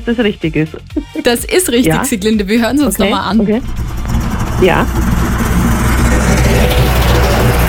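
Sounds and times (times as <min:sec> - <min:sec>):
speech: 0:00.0 - 0:03.8, 0:04.6 - 0:05.2
snowplough pushing snow aside in winter: 0:03.0 - 0:07.6.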